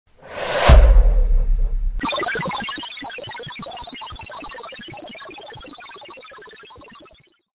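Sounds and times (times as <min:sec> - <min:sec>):
sci-fi whoosh: 0:00.1 - 0:02.0.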